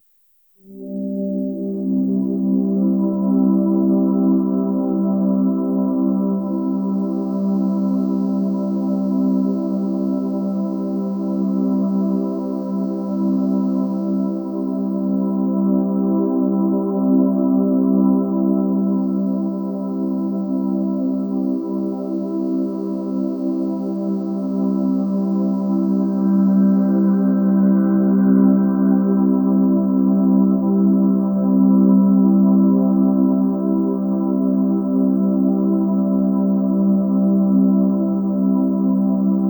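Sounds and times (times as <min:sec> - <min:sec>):
gentle airy ambient pad for meditation: 0:00.6 - 0:39.4.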